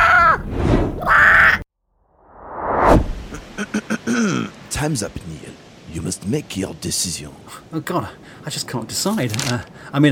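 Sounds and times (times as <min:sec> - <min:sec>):
crow cawing: 0:01.0 - 0:01.6
rising whoosh: 0:01.9 - 0:03.6
speech: 0:04.2 - 0:10.0.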